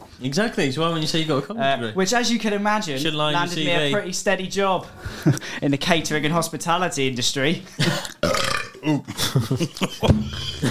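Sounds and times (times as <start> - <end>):
speech: 0.2 - 10.6
long loud gurgling burp: 7.8 - 9.1
laughter: 8.9 - 10.6.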